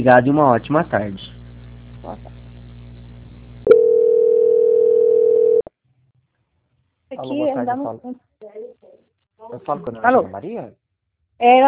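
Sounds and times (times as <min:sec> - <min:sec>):
speech: 0:00.0 - 0:01.3, 0:07.1 - 0:10.8, 0:11.4 - 0:11.6
faint low hum: 0:00.0 - 0:10.8
telephone line tone during a call transfer: 0:03.6 - 0:05.7.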